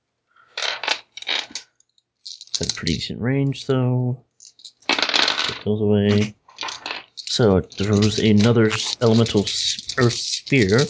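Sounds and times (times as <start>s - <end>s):
six dice rattling during a tabletop game: 0.6s - 1.6s, 2.2s - 3.0s, 4.4s - 10.8s
speech: 2.8s - 4.3s, 5.6s - 6.4s, 7.4s - 10.8s.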